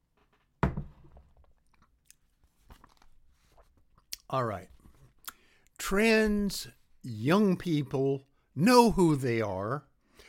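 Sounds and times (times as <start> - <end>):
glass thunk: 0.6 - 1.2
speech: 4.3 - 4.8, 5.9 - 9.9.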